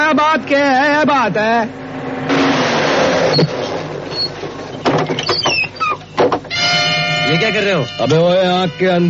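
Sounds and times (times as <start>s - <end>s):
truck engine revving: 0.0s - 5.0s
speech: 0.1s - 2.5s, 7.3s - 9.0s
mechanical clunks: 2.8s - 8.2s
squeaky mechanical rattles: 3.3s - 9.0s.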